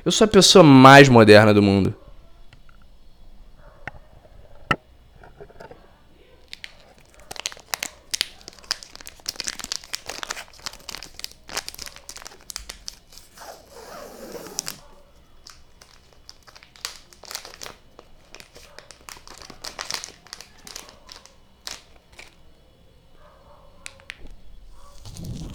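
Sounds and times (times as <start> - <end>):
speech: 0.0 - 2.0
plastic packaging being torn and pulled open during an unboxing: 6.4 - 22.4, 23.8 - 25.5.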